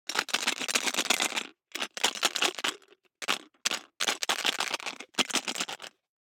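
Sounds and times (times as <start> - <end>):
five dice shaken in a closed plastic cup: 0.1 - 6.0.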